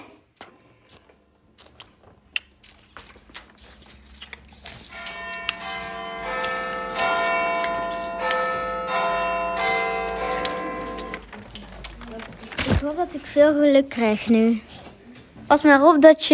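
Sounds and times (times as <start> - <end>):
large clock bell striking midnight: 4.9 - 11.4
speech: 12.9 - 14.7, 15.5 - 16.3.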